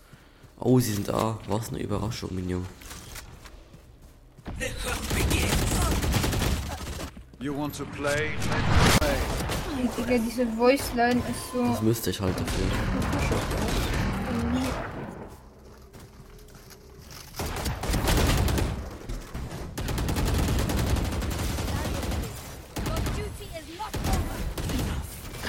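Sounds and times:
speech: 0:00.6 - 0:03.0, 0:07.4 - 0:14.1
video game gunfire: 0:04.6 - 0:07.1, 0:08.9 - 0:15.1, 0:17.4 - 0:25.4.

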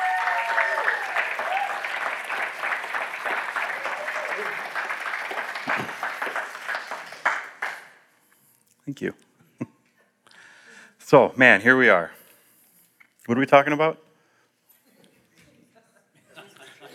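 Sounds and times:
faint cheers from church audience: 0:00.0 - 0:02.3, 0:03.5 - 0:04.9
church audience applauding: 0:00.0 - 0:08.0
speech: 0:08.9 - 0:09.3, 0:11.1 - 0:12.2, 0:13.3 - 0:14.0
laughter: 0:14.9 - 0:16.9.

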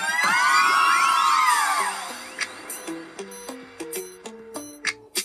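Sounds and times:
crowd of girls screaming: 0:00.0 - 0:02.4
bright plucky melody: 0:02.4 - 0:05.1.

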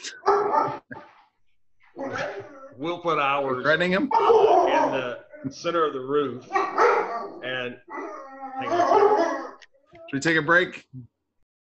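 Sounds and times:
dog barking: 0:00.1 - 0:01.0, 0:04.1 - 0:05.2, 0:06.4 - 0:09.6
dog yip: 0:00.2 - 0:00.8, 0:04.1 - 0:05.0, 0:06.5 - 0:09.6
speech: 0:02.8 - 0:06.8, 0:07.5 - 0:07.9, 0:10.1 - 0:11.1.

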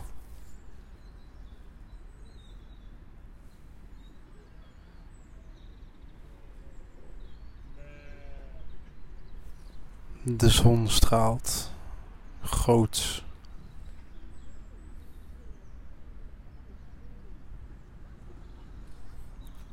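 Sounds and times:
faint bird chirps: 0:00.0 - 0:17.7
steady outdoor farmyard hum on a sunny day: 0:00.0 - 0:19.7
goat bleating: 0:07.8 - 0:08.6
speech: 0:10.2 - 0:11.7, 0:12.7 - 0:13.2.

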